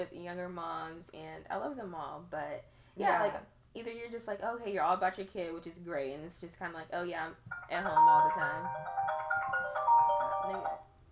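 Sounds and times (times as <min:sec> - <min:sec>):
speech: 0:00.0 - 0:10.8
phone ringtone playing a short melodic electronic tune: 0:07.5 - 0:10.9.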